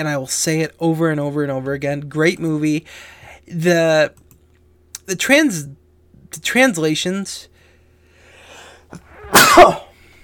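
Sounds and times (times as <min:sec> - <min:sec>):
speech: 0:00.0 - 0:04.2, 0:05.1 - 0:07.5, 0:08.9 - 0:09.8
sharp intake of breath: 0:07.6 - 0:09.0
loud sneeze: 0:09.0 - 0:09.9.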